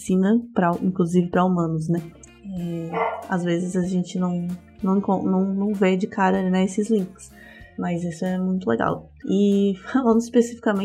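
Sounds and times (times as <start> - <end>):
speech: 0.0 - 10.8
dog barking: 2.9 - 3.3.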